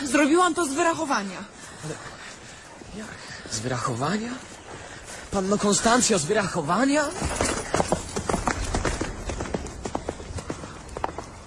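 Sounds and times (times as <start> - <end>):
speech: 0.2 - 2.2, 2.9 - 4.5, 5.3 - 7.5
horse hooves galloping: 4.6 - 11.4.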